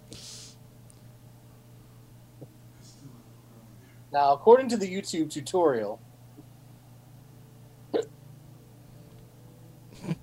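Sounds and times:
low steady hum: 0:00.0 - 0:10.2
speech: 0:04.1 - 0:06.1
hiccups: 0:07.9 - 0:08.1.

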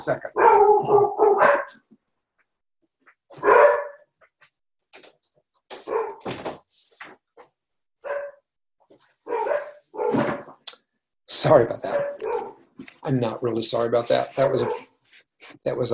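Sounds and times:
speech: 0:00.0 - 0:01.3, 0:11.4 - 0:12.1, 0:13.0 - 0:14.9, 0:15.6 - 0:15.9
several dogs barking at someone arriving home: 0:00.2 - 0:01.9, 0:03.0 - 0:04.5, 0:05.7 - 0:06.4, 0:08.0 - 0:08.5, 0:09.2 - 0:10.6, 0:11.8 - 0:12.8, 0:14.4 - 0:15.0.

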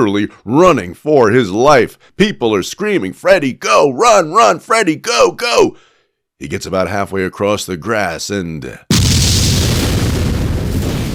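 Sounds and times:
speech: 0:00.0 - 0:08.9
outdoor explosion with deep rumbling boom and low roar: 0:08.9 - 0:11.1.

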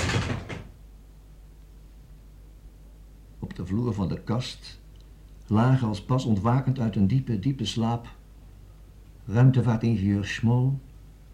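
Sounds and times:
cupboard door yanked open: 0:00.0 - 0:00.8
speech: 0:03.4 - 0:04.8, 0:05.5 - 0:08.2, 0:09.3 - 0:10.9.

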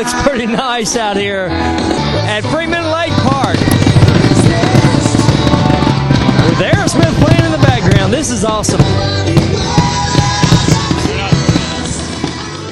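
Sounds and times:
speech: 0:00.0 - 0:03.7, 0:06.6 - 0:09.7
fireworks exploding outdoors at a lake park after a concert: 0:02.7 - 0:12.7.

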